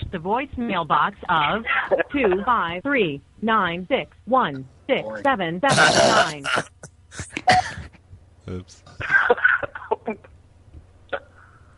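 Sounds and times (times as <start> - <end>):
speech: 0.1 - 6.8, 8.5 - 9.4
man coughing on a phone call: 5.7 - 7.9.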